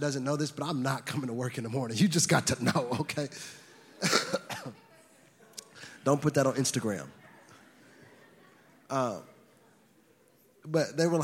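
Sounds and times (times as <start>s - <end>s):
speech: 0.0s - 4.8s, 6.0s - 7.2s, 8.9s - 9.3s, 10.6s - 11.2s
harsh raspy coughs: 4.0s - 4.8s.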